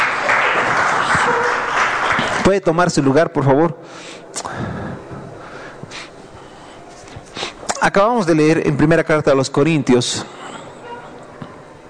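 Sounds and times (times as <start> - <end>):
audience applauding loudly: 0.0 - 2.8
speech: 2.5 - 4.7, 7.8 - 10.4.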